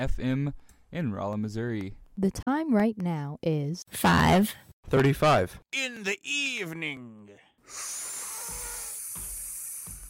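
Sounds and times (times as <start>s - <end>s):
speech: 0.0s - 8.1s
aerosol spray paint can hissing: 8.2s - 10.0s.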